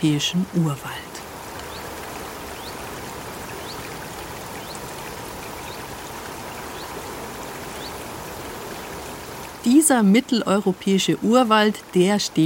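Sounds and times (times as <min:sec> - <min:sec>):
speech: 0:00.0 - 0:01.1, 0:09.6 - 0:12.4
babbling stream in a Central European primeval forest in the Bavarian Forest: 0:00.0 - 0:12.4
small birds chirping in short rising calls in forest: 0:01.1 - 0:09.6.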